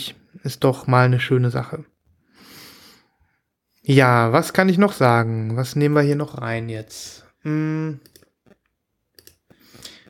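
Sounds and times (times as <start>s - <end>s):
speech: 0.0s - 1.9s, 3.9s - 8.1s
quiet computer mouse clicks: 8.0s - 10.0s.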